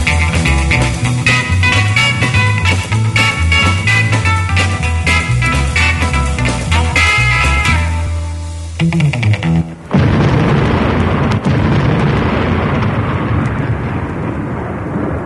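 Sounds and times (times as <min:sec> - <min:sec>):
thunder crash rumbling: 0:00.0 - 0:07.1, 0:09.8 - 0:15.2
instrumental rock-and-roll tune: 0:00.0 - 0:10.0.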